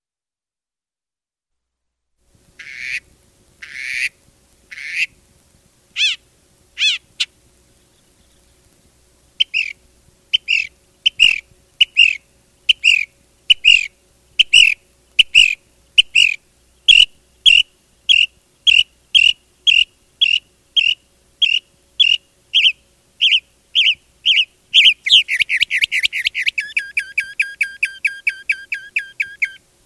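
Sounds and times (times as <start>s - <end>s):
mockingbird singing: 6.0s - 6.2s, 6.8s - 8.6s, 9.4s - 29.6s.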